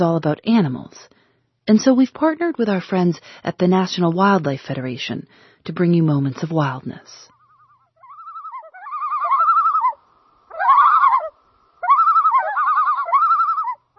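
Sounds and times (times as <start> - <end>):
speech: 0.0 - 7.3
common loon tremolo call: 7.4 - 13.9.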